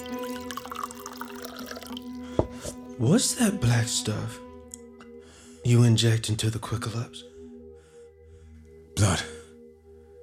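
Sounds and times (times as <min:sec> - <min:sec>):
drink being poured into a glass: 0:00.0 - 0:02.8
drips: 0:00.0 - 0:02.8
speech: 0:03.0 - 0:04.4, 0:05.6 - 0:07.3, 0:09.0 - 0:09.4.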